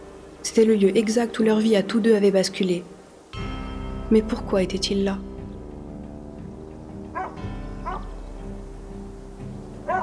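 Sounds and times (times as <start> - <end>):
speech: 0.4 - 3.0, 4.1 - 5.3
dog barking in short sharp bursts: 7.2 - 8.1, 9.8 - 10.0.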